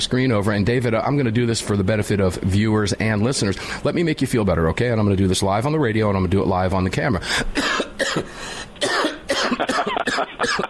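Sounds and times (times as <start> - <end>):
speech: 0.0 - 9.0
harsh hacking coughs: 7.6 - 10.6.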